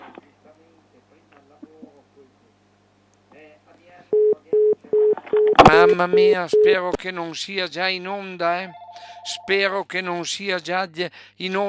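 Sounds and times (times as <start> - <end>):
loud telephone tone beeps of a call connecting: 4.2 - 6.8, 8.7 - 9.5
speech: 5.7 - 11.6.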